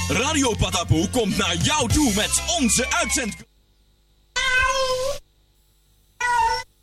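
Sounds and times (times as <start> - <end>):
speech: 0.1 - 3.5
cat meowing: 4.3 - 5.2, 6.2 - 6.7.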